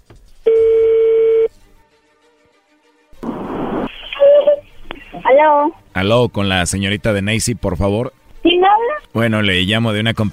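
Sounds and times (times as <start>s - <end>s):
electronic telephone ring tone: 0.5s - 1.5s
crackly telephone line noise: 3.2s - 5.4s
speech: 5.4s - 10.3s.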